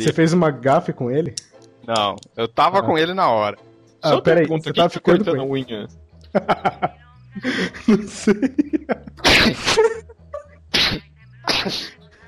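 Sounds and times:
speech: 0:00.0 - 0:10.1, 0:10.8 - 0:12.2
laughter: 0:06.3 - 0:10.5
person sneezing: 0:09.2 - 0:10.0, 0:10.8 - 0:12.2.

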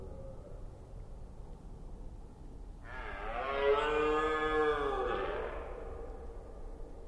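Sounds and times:
rutting red deer stag giving a long hoarse roar in the Forêt d'Orléans, France: 0:02.8 - 0:06.2.

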